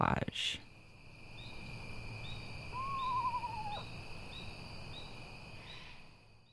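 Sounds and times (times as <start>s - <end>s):
speech: 0.0s - 0.7s
buzzing night insects: 0.0s - 6.5s
small screech owl whistled call: 2.7s - 3.9s.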